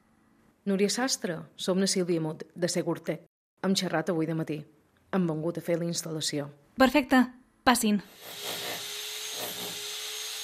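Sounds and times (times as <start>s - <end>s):
speech: 0.7s - 8.6s
power tools whirring: 8.1s - 10.4s.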